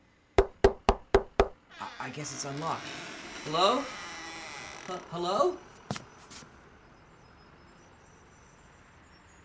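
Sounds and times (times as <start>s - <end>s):
knocking on a door: 0.4s - 1.6s
speech: 2.0s - 4.0s, 4.9s - 5.7s.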